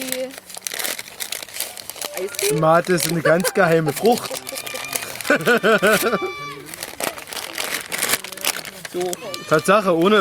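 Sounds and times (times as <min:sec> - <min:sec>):
packaging crinkling while something is unpacked: 0:00.0 - 0:10.1
laughter: 0:02.1 - 0:10.1
speech: 0:02.2 - 0:04.4, 0:05.3 - 0:06.5, 0:09.0 - 0:10.1.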